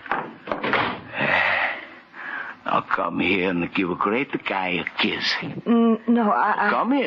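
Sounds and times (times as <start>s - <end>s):
door being pushed shut: 0.1s - 1.1s
speech: 2.8s - 7.0s.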